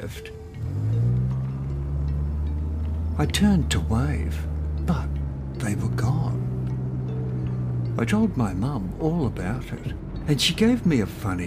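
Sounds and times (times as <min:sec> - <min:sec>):
speech: 0:00.0 - 0:00.8, 0:03.2 - 0:06.4, 0:08.0 - 0:11.4
car engine humming as the car moves off: 0:00.0 - 0:11.4.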